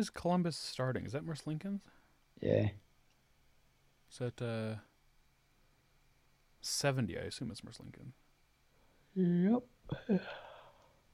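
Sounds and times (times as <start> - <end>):
speech: 0.0 - 2.8, 4.1 - 4.9, 6.6 - 8.2, 9.2 - 10.5
human yawn: 9.9 - 10.9.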